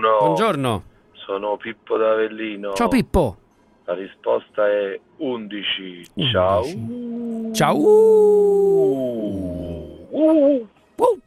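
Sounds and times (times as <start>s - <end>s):
speech: 0.0s - 11.2s
wolf howling: 6.2s - 10.7s.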